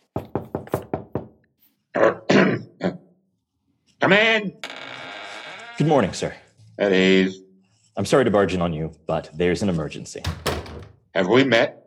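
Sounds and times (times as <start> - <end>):
knocks on an officer's office door: 0.1 - 1.4, 10.2 - 11.0
speech: 2.0 - 3.0, 4.1 - 4.8, 5.8 - 7.4, 8.0 - 10.5, 11.2 - 11.8.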